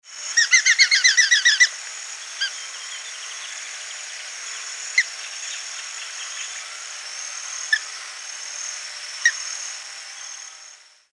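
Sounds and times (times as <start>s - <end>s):
Falco rufigularis song: 0.4s - 3.4s.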